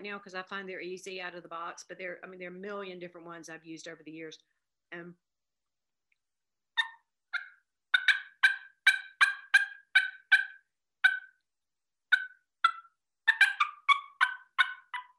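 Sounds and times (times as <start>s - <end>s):
speech: 0.0s - 5.3s
turkey game call yelps and clucks: 6.8s - 11.4s, 12.1s - 15.1s.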